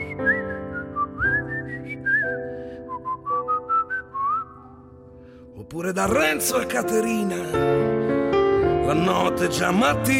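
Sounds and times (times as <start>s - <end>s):
person whistling a lilting tune: 0.0s - 5.0s
speech: 5.7s - 7.9s, 8.8s - 10.1s.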